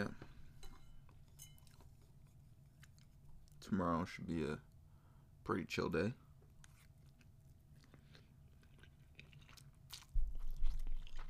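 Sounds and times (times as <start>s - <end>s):
speech: 3.6s - 4.7s, 5.5s - 6.2s
chewing and biting of noodles: 6.6s - 11.2s.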